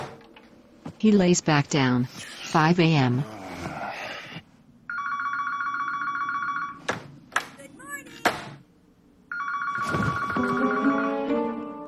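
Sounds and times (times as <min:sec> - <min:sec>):
speech: 0:01.0 - 0:03.4
telephone ringing with a wake-up call: 0:04.9 - 0:06.9, 0:09.3 - 0:11.7.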